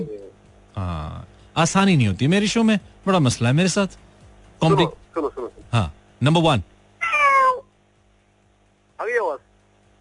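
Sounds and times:
speech: 0.8 - 4.0, 4.6 - 6.7
person imitating cat meows: 7.0 - 7.7.

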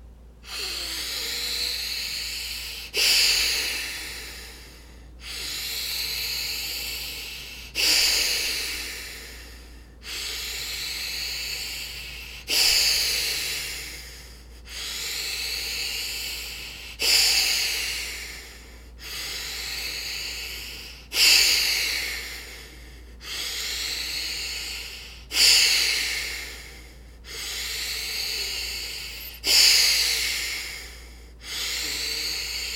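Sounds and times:
forceful breaths through the nose during a breathing exercise: 0.4 - 32.7.

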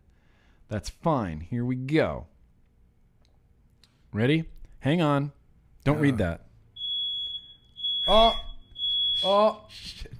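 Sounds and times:
speech: 0.7 - 2.3, 4.1 - 6.4, 8.1 - 8.5, 9.2 - 10.1
smoke alarm shrilling with a continuous high-pitched tone: 6.7 - 9.8.

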